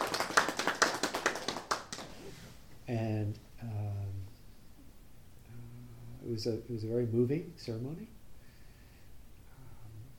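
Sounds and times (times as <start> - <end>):
hands clapping: 0.0 - 2.3
speech: 2.9 - 3.8, 6.3 - 8.2.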